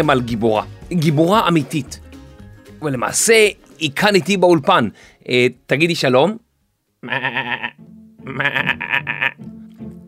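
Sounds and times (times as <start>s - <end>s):
speech: 0.0s - 2.0s, 2.8s - 6.4s, 7.0s - 9.6s
goat bleating: 7.0s - 9.5s.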